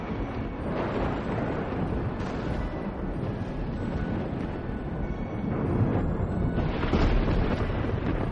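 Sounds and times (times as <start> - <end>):
thunder rumbling: 0.0 - 8.3.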